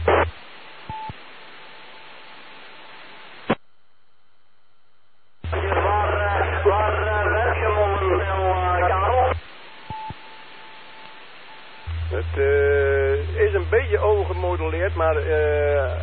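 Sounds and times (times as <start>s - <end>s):
radio channel low hum on a repeater: 0.0s - 3.7s, 5.3s - 16.0s
garbled voice of another station over a radio repeater: 5.5s - 9.4s, 12.1s - 16.0s.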